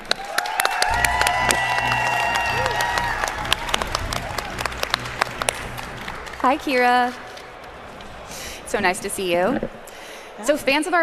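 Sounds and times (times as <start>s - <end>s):
audience applause of many hands clapping: 0.0s - 8.2s
cheering: 0.0s - 11.0s
crowd murmur: 1.0s - 11.0s
speech: 6.4s - 7.2s, 8.7s - 9.8s, 10.4s - 11.0s.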